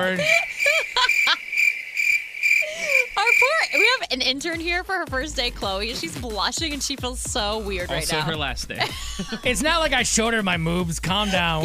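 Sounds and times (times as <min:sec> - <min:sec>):
speech: 0:00.0 - 0:01.2, 0:02.8 - 0:11.6
laughter: 0:00.0 - 0:01.5, 0:02.6 - 0:04.0, 0:07.9 - 0:11.6
crickets chirping in a high-pitched trill: 0:00.2 - 0:04.0.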